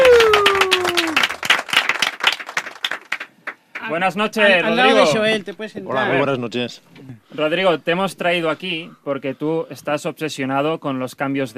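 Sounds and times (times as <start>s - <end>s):
studio audience applause: 0.0s - 3.8s
speech: 3.9s - 11.5s.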